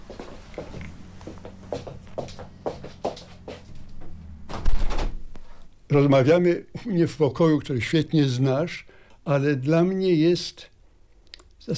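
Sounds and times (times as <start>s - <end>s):
faint steady hum: 0.0s - 11.7s
door clicks and rattles: 3.9s - 5.3s
speech: 5.9s - 10.7s.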